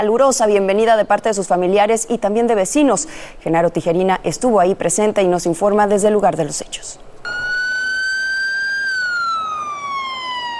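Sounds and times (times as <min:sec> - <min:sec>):
speech: 0:00.0 - 0:07.1
police siren wailing from a car caravan: 0:07.3 - 0:10.5.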